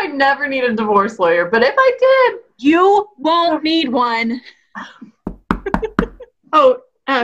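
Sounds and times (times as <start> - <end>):
speech: 0.2 - 5.0, 6.5 - 7.2
sharp knocks on a door: 5.2 - 6.3.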